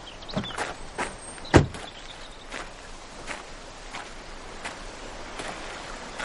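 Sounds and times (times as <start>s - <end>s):
car door shutting with a solid thud: 0.3s - 0.6s, 1.5s - 1.9s
soft footsteps walking away: 0.3s - 6.2s
car door clicking open: 1.5s - 1.8s.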